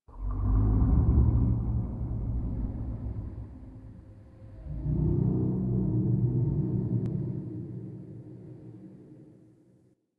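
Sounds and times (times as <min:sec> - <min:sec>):
large moaning indoor texture: 0:00.1 - 0:09.4.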